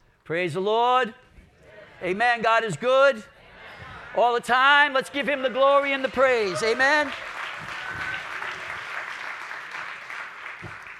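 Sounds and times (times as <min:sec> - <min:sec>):
speech: 0:00.3 - 0:01.2, 0:02.0 - 0:03.3, 0:04.1 - 0:07.3
church audience applause welcoming the pastor: 0:04.9 - 0:10.9.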